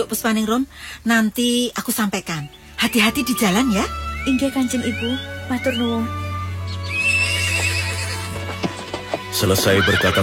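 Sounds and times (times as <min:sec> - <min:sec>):
speech: 0:00.0 - 0:06.2, 0:09.3 - 0:10.2
horse harnessed to a horse-drawn carriage neighing: 0:03.4 - 0:10.2.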